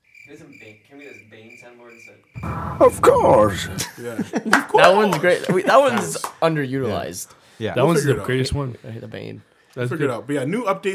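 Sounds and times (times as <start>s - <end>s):
cricket sound effect played from a soundboard: 0.0s - 2.4s
speech: 0.3s - 10.9s
lower rhythmic croaking pulses: 2.4s - 3.9s
laughter: 3.2s - 6.3s.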